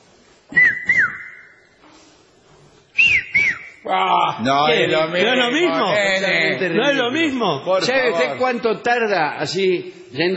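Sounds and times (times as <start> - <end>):
whistle blown in sharp double blasts: 0.5 - 1.8, 3.0 - 3.8
speech: 3.9 - 10.3.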